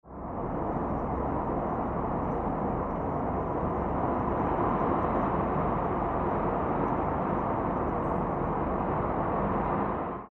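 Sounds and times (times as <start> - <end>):
steady howling wind: 0.1 - 10.2.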